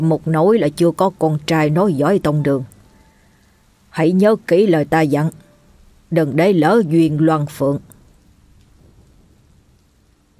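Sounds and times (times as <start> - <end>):
speech: 0.0 - 2.7, 4.0 - 5.4, 6.1 - 7.9
rain falling outside: 0.0 - 10.3
low thunder rumbling: 8.5 - 10.3.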